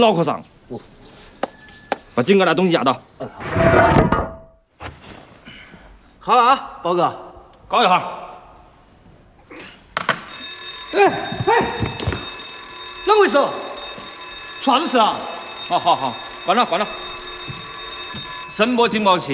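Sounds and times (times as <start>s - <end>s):
speech: 0.0s - 0.9s, 2.2s - 4.2s, 6.3s - 8.3s, 11.0s - 11.9s, 13.1s - 13.7s, 14.6s - 17.0s, 18.6s - 19.3s
sonic alarm device going off in warbling bursts: 10.3s - 18.8s.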